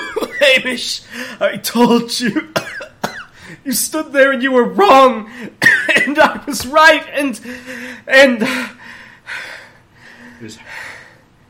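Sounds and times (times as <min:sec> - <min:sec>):
steady low hum of noise: 0:00.0 - 0:11.4
speech: 0:00.5 - 0:02.6, 0:03.6 - 0:09.5, 0:10.4 - 0:10.9
heavy breathing with gasping inhale: 0:01.0 - 0:01.4, 0:03.3 - 0:03.6, 0:07.4 - 0:11.4.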